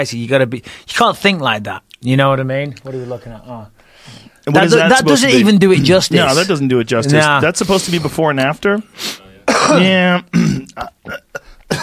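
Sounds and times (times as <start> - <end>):
speech: 0.0 - 11.8
congested throat clearing from a person recovering from a cold: 9.4 - 11.8
person coughing roughly: 9.4 - 11.8.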